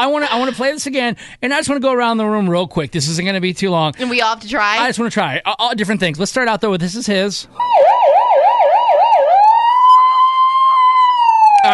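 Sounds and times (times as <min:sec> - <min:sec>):
speech: 0:00.0 - 0:08.2
police siren warbling: 0:07.6 - 0:11.7.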